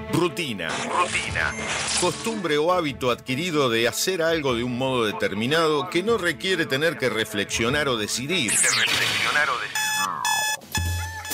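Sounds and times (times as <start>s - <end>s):
speech: 0.2s - 9.7s
voice-like sound: 8.5s - 10.4s
loud electronic alarm clock ringing: 9.7s - 11.3s.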